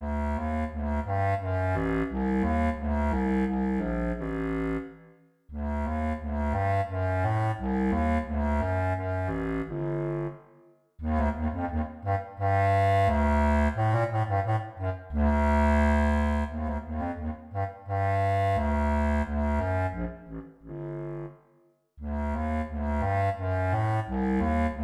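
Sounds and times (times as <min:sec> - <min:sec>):
contrabass clarinet: 0:00.0 - 0:10.4, 0:11.0 - 0:21.4, 0:22.0 - 0:24.8.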